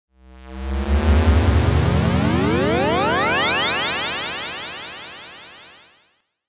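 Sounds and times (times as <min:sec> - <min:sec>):
ascending FM synth sound design with delay: 0:00.7 - 0:04.8.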